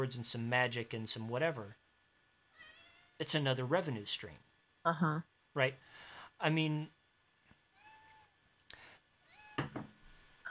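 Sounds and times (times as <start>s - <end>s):
speech: 0.0s - 1.8s, 3.2s - 7.0s
pet cat meowing in drawn-out rising calls: 2.5s - 3.2s, 7.7s - 8.3s, 9.3s - 9.6s.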